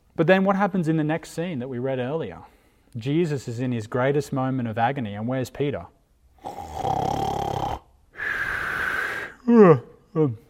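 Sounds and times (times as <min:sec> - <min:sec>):
speech: 0:00.2 - 0:06.0, 0:09.5 - 0:10.4
voice imitating snoring: 0:06.4 - 0:10.3.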